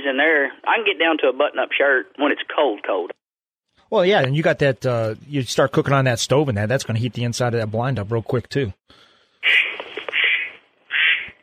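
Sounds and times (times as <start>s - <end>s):
speech: 0.1s - 3.2s, 3.9s - 9.6s
duck call blown in nasal quacking bursts: 9.4s - 11.4s.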